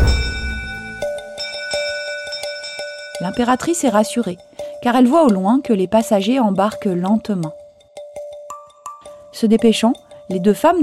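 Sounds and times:
low thud of bell strike: 0.0s - 1.1s
steamboat bell ringing with metallic overtones: 0.0s - 5.4s
speech: 3.2s - 7.6s, 9.4s - 10.8s.

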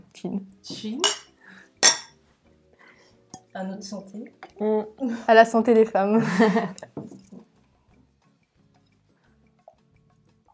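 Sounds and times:
speech: 0.2s - 1.2s, 3.6s - 7.2s
glasses of blueberry juice clinking in a toast: 1.0s - 2.2s
laughter: 6.2s - 6.9s.

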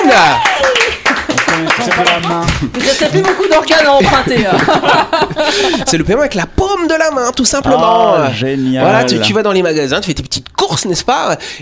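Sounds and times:
applause in a room: 0.0s - 4.9s
laughter: 0.1s - 6.3s
speech: 0.2s - 0.5s, 1.9s - 11.5s.

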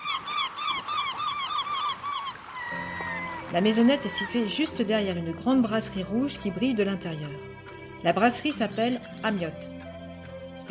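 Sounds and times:
flock of seagulls squawking: 0.0s - 5.1s
speech: 3.5s - 9.8s.

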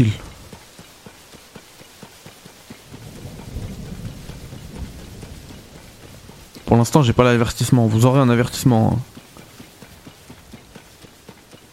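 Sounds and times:
speech: 0.0s - 0.3s, 6.7s - 9.1s
faint regular tapping: 0.0s - 11.7s
steady rain pattering in a video game thunderstorm: 0.0s - 11.7s
low rumble of thunder in a video game thunderstorm: 2.8s - 10.6s.

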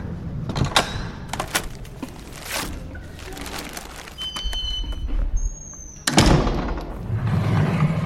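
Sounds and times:
elevator doors clunking and sliding with mechanical thumps: 0.0s - 8.0s.

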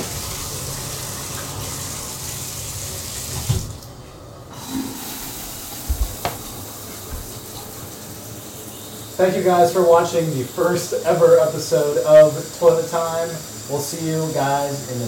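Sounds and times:
water running from a tap: 0.0s - 3.9s, 4.5s - 15.0s
soft knocks: 5.8s - 7.5s
speech: 9.2s - 15.0s.

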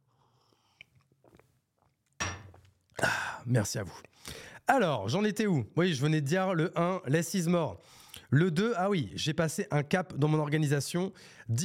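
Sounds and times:
person sipping water: 0.1s - 3.1s
speech: 3.5s - 4.1s, 4.7s - 11.6s.

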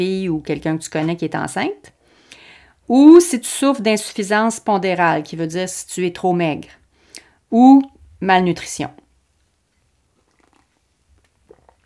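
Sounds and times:
speech: 0.0s - 2.0s, 2.9s - 6.8s, 7.5s - 9.0s
person sipping coffee close to the mic: 10.0s - 11.8s
soft slurping and swallowing noises: 10.0s - 11.8s.

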